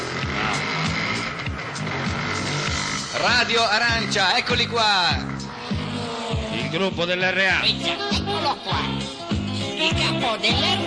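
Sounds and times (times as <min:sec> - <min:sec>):
poorly carburetted engine being restarted and revving unevenly: 0:00.0 - 0:08.1
speech: 0:03.2 - 0:05.3, 0:06.7 - 0:09.0, 0:09.8 - 0:10.8.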